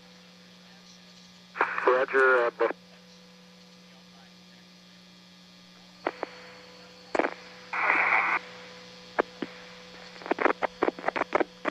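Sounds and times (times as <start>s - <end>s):
steady low electrical hum: 0.0s - 11.6s
radio static hiss after lost transmission: 0.6s - 3.2s, 3.9s - 11.6s
speech: 2.0s - 2.8s
crackles and pops: 6.0s - 6.4s, 7.1s - 8.4s, 9.2s - 11.6s.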